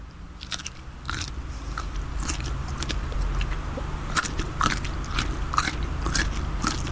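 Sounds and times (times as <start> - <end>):
person chewing crunchy food with mouth open: 0.0 - 6.8.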